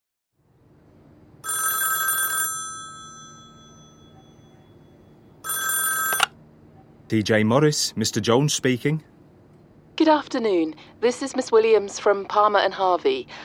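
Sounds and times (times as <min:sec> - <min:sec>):
telephone ringing: 0:01.4 - 0:06.4
speech: 0:07.1 - 0:09.1, 0:10.0 - 0:13.4.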